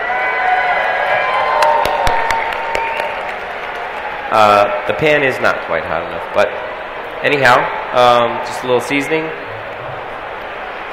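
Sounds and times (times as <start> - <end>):
studio audience at a cooking demonstration cheering and whooping: 0.0 - 5.6, 6.6 - 10.9
studio audience clapping: 0.4 - 5.4
speech: 4.3 - 9.4.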